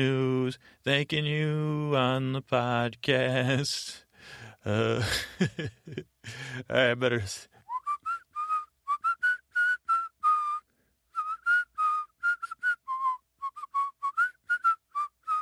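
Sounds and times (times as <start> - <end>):
speech: 0.0 - 7.5
person whistling a tune while breathing in: 7.6 - 15.4.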